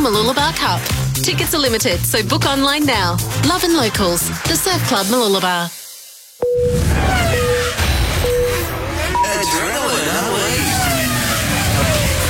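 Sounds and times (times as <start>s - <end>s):
speech: 0.1s - 5.8s
go-kart engines revving at a kart track in Landsborough: 6.8s - 12.2s.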